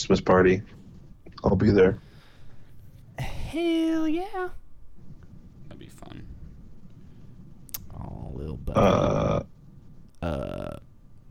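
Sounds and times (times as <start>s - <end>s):
speech: 0.0s - 0.8s, 1.4s - 2.1s, 3.2s - 4.6s, 8.3s - 9.5s, 10.2s - 10.6s
loud throaty burp: 8.7s - 9.5s.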